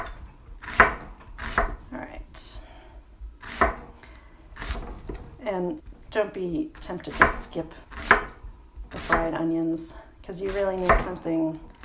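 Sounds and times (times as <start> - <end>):
knife slicing food on a cutting board in a home kitchen: 0.0 - 1.9, 3.4 - 3.9, 6.8 - 9.4, 10.4 - 11.2
speech: 5.5 - 7.9, 9.0 - 11.7.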